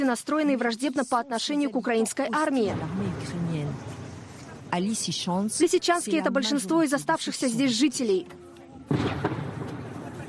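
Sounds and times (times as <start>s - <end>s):
speech: 0.0s - 3.9s, 4.7s - 9.4s
gunfire in shelled Lysychansk: 8.9s - 10.2s.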